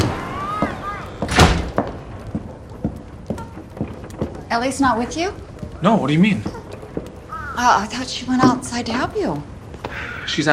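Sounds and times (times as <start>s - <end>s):
door kicked shut: 0.0s - 2.0s
soft footsteps or light thuds: 0.6s - 10.0s
speech: 4.5s - 6.6s, 7.6s - 10.5s.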